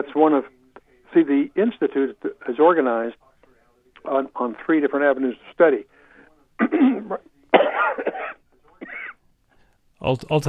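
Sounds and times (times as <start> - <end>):
speech: 0.0 - 3.2, 4.0 - 5.9, 6.6 - 8.2, 10.0 - 10.4
harsh coughing bursts: 6.6 - 9.2.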